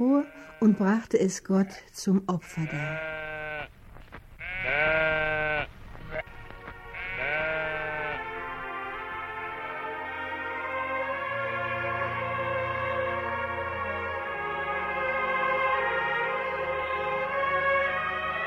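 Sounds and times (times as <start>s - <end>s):
speech: 0.0s - 3.2s
sheep bleating: 0.0s - 8.4s, 11.4s - 12.1s
low steady drone: 8.1s - 18.4s.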